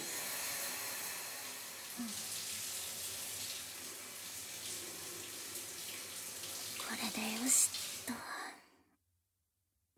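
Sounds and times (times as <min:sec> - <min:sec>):
hot water being poured over someone in a bath: 0:00.0 - 0:08.4
speech: 0:02.0 - 0:02.3.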